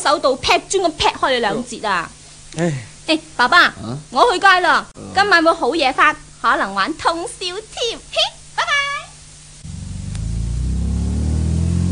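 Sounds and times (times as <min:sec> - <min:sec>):
speech: 0:00.0 - 0:08.4
sports car engine driving: 0:09.6 - 0:11.8.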